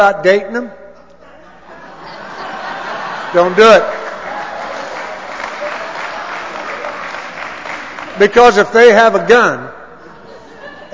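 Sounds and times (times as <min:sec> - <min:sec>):
speech: 0:00.0 - 0:00.8, 0:03.3 - 0:04.0, 0:08.2 - 0:09.7
laughter: 0:01.0 - 0:08.2, 0:10.0 - 0:10.9
audience including women applauding: 0:02.6 - 0:08.6.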